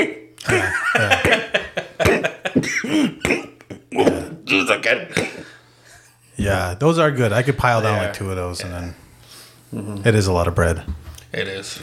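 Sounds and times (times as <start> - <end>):
person imitating hiccups: 0.0 - 0.6, 2.0 - 5.4
laughter: 0.4 - 4.0
speech: 6.5 - 9.0, 9.7 - 11.8.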